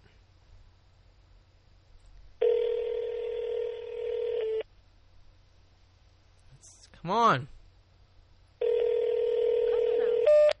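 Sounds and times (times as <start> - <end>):
phone line busy tone beep: 2.4 - 4.6, 8.6 - 10.5
speech: 7.0 - 7.6.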